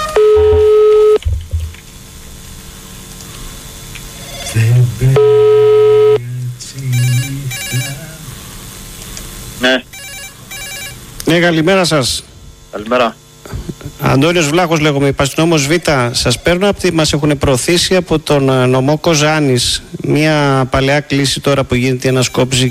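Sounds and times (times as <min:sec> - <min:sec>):
phone line noise: 0:00.1 - 0:01.2, 0:04.2 - 0:08.2, 0:09.6 - 0:11.1, 0:15.9 - 0:17.0, 0:22.0 - 0:22.7
telephone ringback tone of an outgoing prank call over a phone line: 0:00.2 - 0:01.2, 0:05.2 - 0:06.2, 0:06.9 - 0:08.1, 0:09.9 - 0:11.0, 0:22.1 - 0:22.7
speech: 0:11.3 - 0:13.2, 0:14.1 - 0:22.7.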